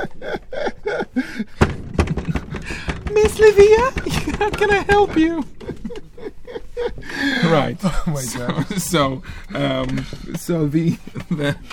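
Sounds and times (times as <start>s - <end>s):
laughter: 0.0s - 1.6s, 3.6s - 11.7s
heavy bangs on a door: 1.6s - 5.8s
speech: 3.4s - 5.5s, 7.5s - 11.7s.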